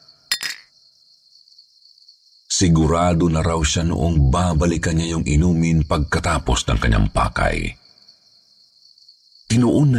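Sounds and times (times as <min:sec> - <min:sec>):
glass bottle set down on a table: 0:00.3 - 0:00.7
speech: 0:02.6 - 0:07.8, 0:09.5 - 0:09.9.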